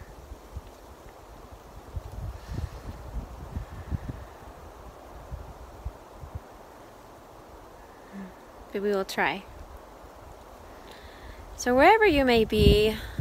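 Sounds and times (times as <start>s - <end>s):
wind buffeting a microphone outdoors on a pine-needle-covered forest slope: 0.0s - 6.5s, 10.6s - 13.1s
soft rustling hiss: 0.0s - 13.1s
speech: 8.8s - 9.5s, 11.6s - 13.1s.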